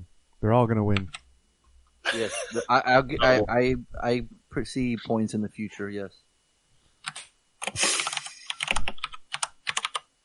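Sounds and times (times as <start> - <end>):
speech: 0.4 - 1.2, 2.1 - 6.2
laughter: 2.1 - 2.7
computer keyboard typing: 7.0 - 10.1.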